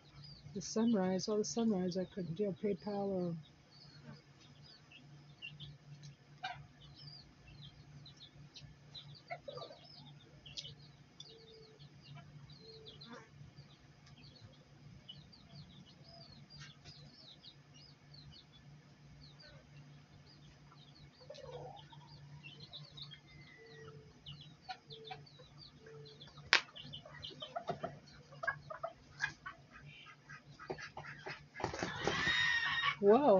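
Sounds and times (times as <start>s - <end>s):
agitated chickens clucking and squawking: 0.0s - 33.3s
speech: 0.6s - 3.5s
chickens flapping: 31.5s - 32.4s.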